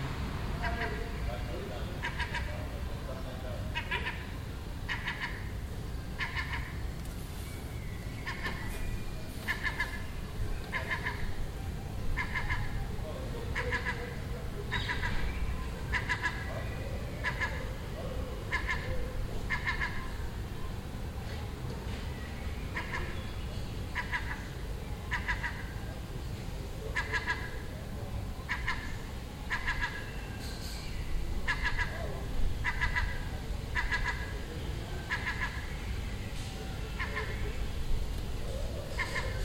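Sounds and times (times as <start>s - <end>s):
constant low rumble: 0.0s - 39.4s
seagulls chattering with short bright calls: 0.6s - 6.9s, 7.7s - 20.8s, 22.4s - 26.0s, 26.9s - 36.2s, 36.8s - 39.4s.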